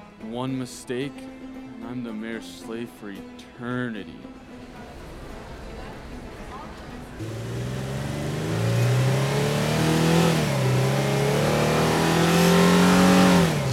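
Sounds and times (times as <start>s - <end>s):
speech: 0.2s - 4.4s, 7.2s - 7.7s
car engine revving and accelerating through gear changes: 7.2s - 13.7s.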